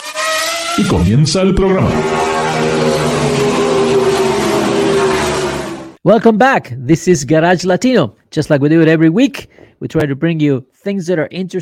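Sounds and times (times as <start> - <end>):
car engine revving and accelerating: 0.0 - 6.0
speech: 0.8 - 3.2, 6.0 - 11.6.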